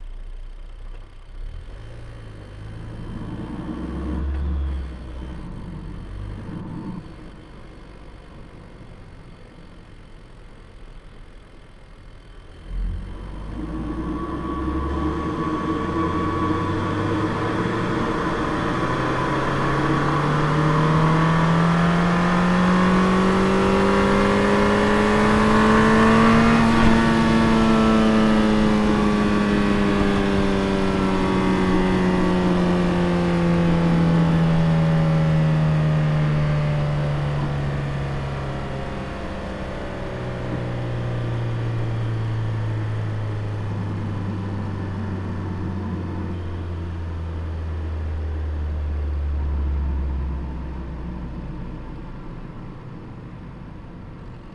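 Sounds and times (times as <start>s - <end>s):
Ford Focus RS engine heard onboard while driving: 0.0s - 54.5s.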